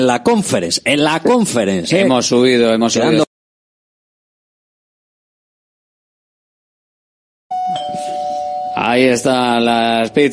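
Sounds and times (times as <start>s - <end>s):
speech: 0.0s - 3.3s, 9.0s - 10.3s
doorbell chiming with sustained ringing tone: 7.5s - 10.3s.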